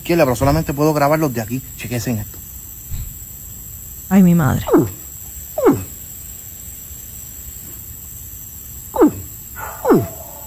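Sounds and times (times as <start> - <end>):
speech: 0.0 - 2.4, 4.1 - 5.0
steady hiss of noise: 0.0 - 10.4
caiman bellowing in Vega Baja: 4.1 - 6.1, 8.9 - 10.4.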